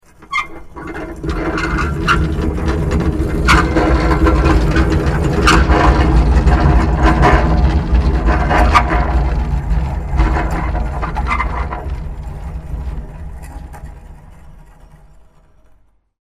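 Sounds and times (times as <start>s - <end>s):
large metal dumpster moving fast: 0.0s - 16.1s.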